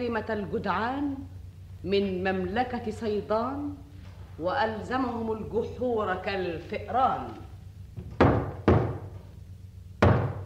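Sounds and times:
speech: 0.0 - 7.4
heavy knocking on a door: 8.0 - 9.2, 10.0 - 10.4.

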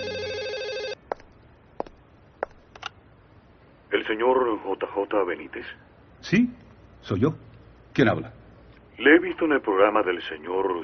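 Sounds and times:
hotel telephone ringing with an incoming call: 0.0 - 1.1
speech: 4.0 - 8.4, 9.0 - 10.8.

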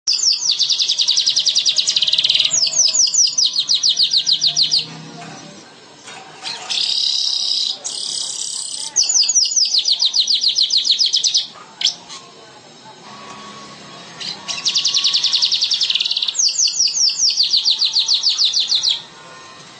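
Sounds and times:
bird singing fast high-pitched repeated chirps: 0.1 - 4.9, 6.4 - 12.2, 14.2 - 19.1
bird sustained harsher buzzy phrase: 0.1 - 5.6, 6.4 - 19.1.

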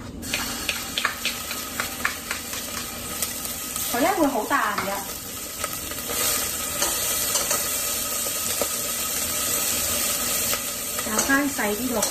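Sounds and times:
garlic sizzling in a hot wok: 0.2 - 12.0
speech: 4.0 - 5.1, 11.3 - 12.0.

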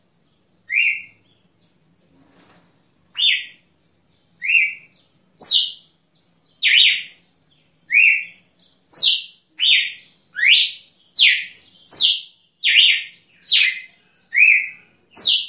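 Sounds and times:
soft rustle: 2.0 - 3.0
female red-cowled cardinal chirping: 3.1 - 15.4.

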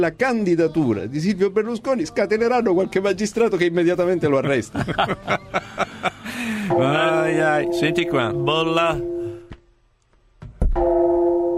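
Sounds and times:
speech: 0.0 - 9.1
laughter: 4.2 - 6.7
Japanese bell ringing: 6.6 - 9.4.

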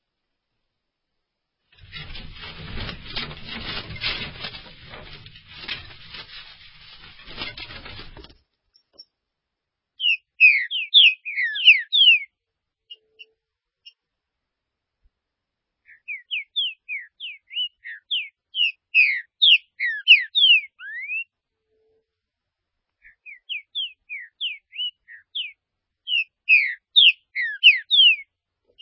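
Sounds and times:
green-winged saltator singing quick whistled notes: 10.0 - 12.3, 15.9 - 21.3, 23.0 - 28.7.

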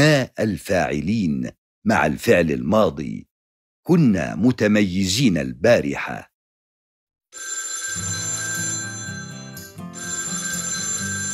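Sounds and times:
speech: 0.2 - 3.3, 3.9 - 6.3
telephone ringing with a bright electronic ringtone: 7.3 - 11.3.

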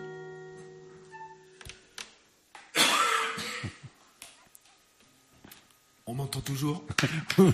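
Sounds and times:
person coughing during a live session: 2.7 - 3.9
speech: 6.1 - 7.5.

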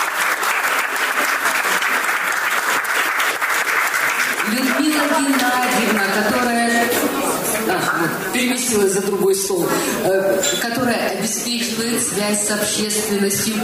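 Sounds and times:
audience applauding at a gathering honouring staff: 0.0 - 8.0
speech: 5.2 - 6.7, 7.8 - 13.6.

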